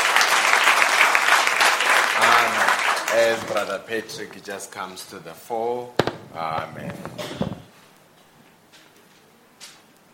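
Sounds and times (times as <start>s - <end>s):
audience applauding: 0.0s - 4.3s
speech: 3.1s - 7.5s.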